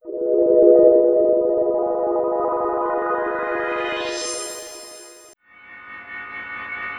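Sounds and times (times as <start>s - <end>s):
ambient atmosphere: 0.0s - 5.4s.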